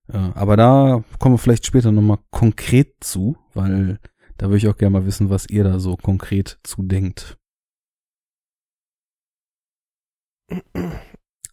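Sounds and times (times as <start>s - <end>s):
speech: 0.1s - 7.4s, 10.5s - 11.1s
person clearing throat: 10.5s - 11.2s.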